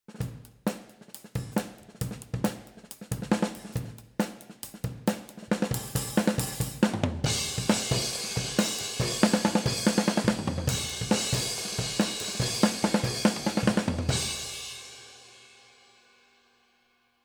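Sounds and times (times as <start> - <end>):
snare drum through overhead mics: 0.1 - 14.8.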